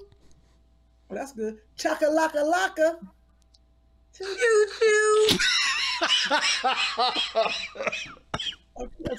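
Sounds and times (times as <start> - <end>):
speech: 1.1 - 3.2, 4.2 - 9.1
person laughing hard: 4.2 - 8.6
harsh coughs amid laughter: 7.2 - 8.6.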